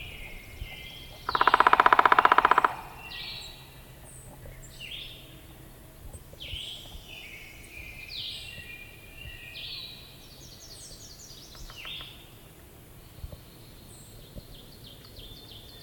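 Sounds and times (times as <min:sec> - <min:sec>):
Downy Woodpecker Picoides pubescens whinny: 0:00.2 - 0:03.6.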